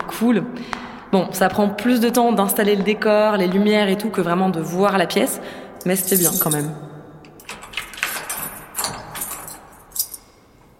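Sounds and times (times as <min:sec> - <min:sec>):
speech: 0:00.2 - 0:06.8
keys jangling on a key ring with a homemade master key: 0:05.8 - 0:10.5.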